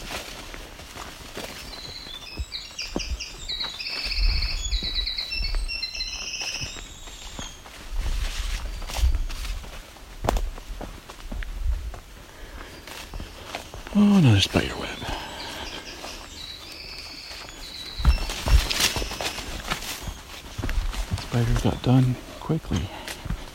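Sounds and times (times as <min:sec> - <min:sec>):
footsteps crunching: 0:00.0 - 0:23.5
winter wren singing: 0:01.7 - 0:07.7, 0:13.1 - 0:20.4, 0:21.3 - 0:23.1
speech: 0:14.3 - 0:15.0, 0:21.4 - 0:23.0.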